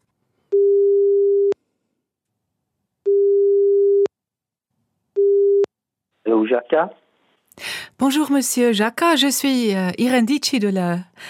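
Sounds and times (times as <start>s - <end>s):
telephone line tone while calling someone: 0.6s - 1.6s, 3.1s - 4.1s
speech: 6.5s - 7.0s, 8.0s - 11.2s.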